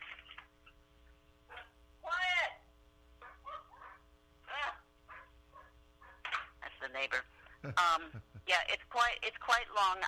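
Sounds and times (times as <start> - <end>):
dog barking: 3.2 - 4.0, 5.1 - 6.2
speech: 7.0 - 10.0.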